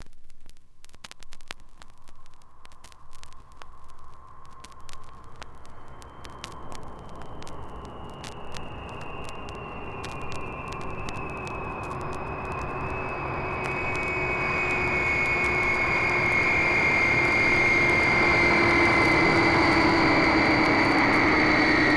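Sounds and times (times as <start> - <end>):
Viscount aircraft landing: 5.8 - 21.9.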